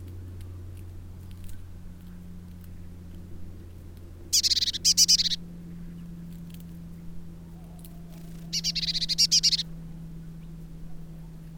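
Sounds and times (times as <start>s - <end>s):
steady low hum: 0.0s - 11.5s
Eurasian blue tit Cyanistes caeruleus giving buzzy churring bursts: 4.3s - 5.4s, 8.4s - 9.7s.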